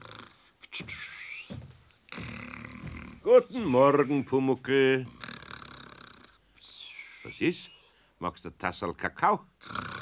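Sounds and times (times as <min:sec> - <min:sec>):
person fake snoring with wheezy breaths and snorts: 0:00.0 - 0:00.4, 0:02.1 - 0:03.2, 0:05.1 - 0:06.4, 0:09.6 - 0:10.0
speech: 0:03.3 - 0:05.2, 0:07.4 - 0:09.8.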